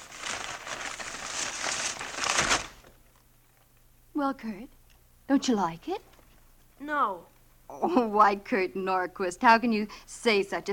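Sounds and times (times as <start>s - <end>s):
paper crinkling as a birthday present is unwrapped: 0.0s - 3.7s
speech: 4.2s - 6.1s, 6.8s - 10.7s.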